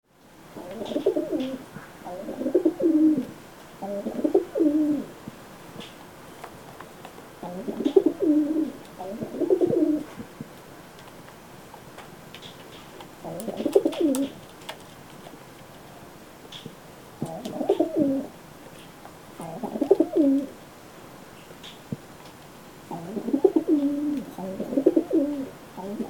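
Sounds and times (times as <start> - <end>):
stock dove cooing: 0.5 - 5.3, 7.4 - 10.3, 13.2 - 14.4, 17.2 - 18.4, 19.4 - 20.6, 22.8 - 26.0.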